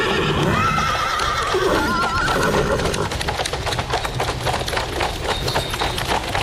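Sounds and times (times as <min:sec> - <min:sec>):
jet-black horses whinnying loudly: 0:00.0 - 0:03.3
steady rapid clatter of horse hooves: 0:00.0 - 0:06.4
horse-drawn carriage wheels rolling on a mountain pass: 0:00.6 - 0:06.4.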